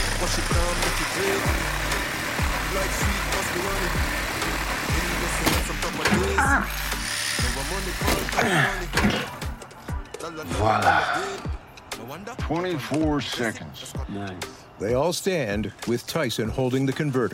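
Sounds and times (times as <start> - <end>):
reciprocating saw cutting through metal exhaust pipes: 0.0 - 9.4
speech: 0.3 - 2.0, 2.7 - 9.5, 10.2 - 17.3.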